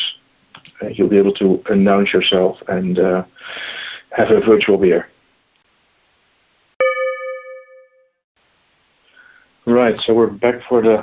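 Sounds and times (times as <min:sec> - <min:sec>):
speech: 0:00.8 - 0:05.1, 0:09.8 - 0:11.0
bell-like notification chime in a virtual meeting: 0:06.8 - 0:08.1.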